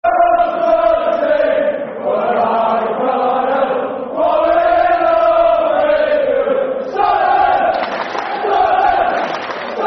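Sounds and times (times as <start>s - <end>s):
football fans chanting a soccer song: 0.1s - 9.8s.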